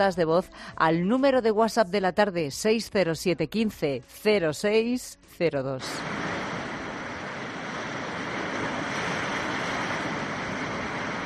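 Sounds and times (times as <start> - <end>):
speech: 0.0 - 6.2
ocean waves crashing against a natural rock arch on a beach: 6.0 - 11.2.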